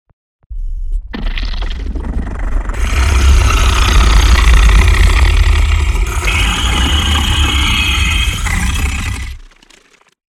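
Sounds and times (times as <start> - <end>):
alligator under water: 2.0 - 10.1.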